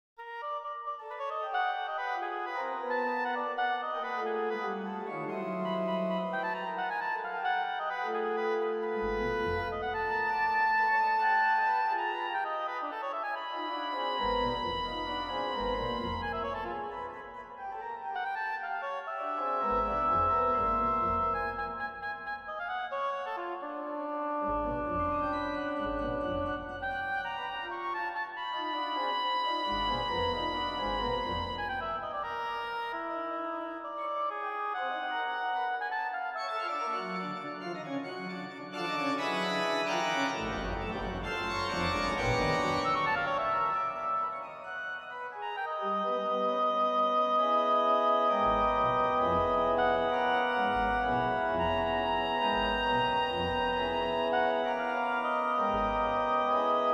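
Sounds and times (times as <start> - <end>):
organ oboe stop: 0.3 - 56.9.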